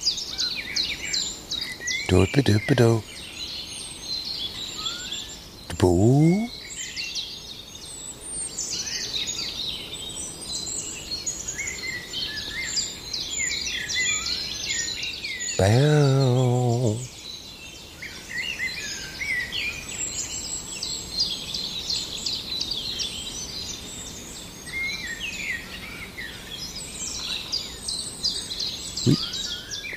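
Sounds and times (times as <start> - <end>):
common blackbird singing: 0.0 - 7.8, 10.5 - 23.8, 26.4 - 29.9
dense continuous outdoor chorus of high rapid chirps and warbles: 0.0 - 29.9
brief low voice: 2.1 - 3.0, 5.7 - 6.5, 15.6 - 17.1
speech: 2.1 - 3.1, 5.8 - 6.4, 15.6 - 16.3.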